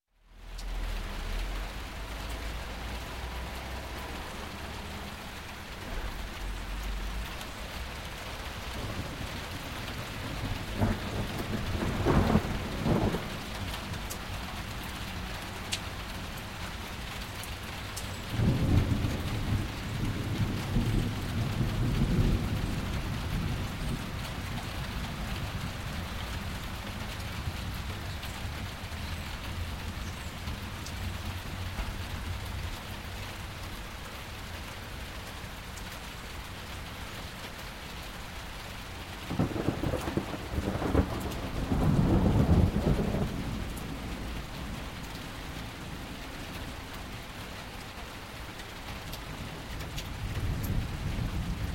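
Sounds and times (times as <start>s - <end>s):
rain heard in a building: 0.0s - 51.7s
thunder heard in a building: 8.7s - 13.8s, 18.3s - 26.1s, 39.3s - 44.9s.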